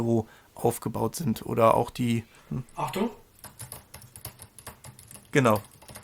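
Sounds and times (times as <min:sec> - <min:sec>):
speech: 0:00.0 - 0:03.8, 0:05.3 - 0:05.7
typing on a flat chiclet-style Mac laptop keyboard: 0:02.8 - 0:06.0.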